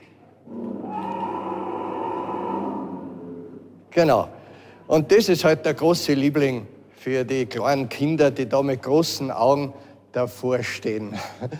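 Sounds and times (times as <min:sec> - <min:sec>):
animatronic Allosaurus dinosaur figure roaring mechanically: 0:00.4 - 0:03.8
speech: 0:04.0 - 0:11.5.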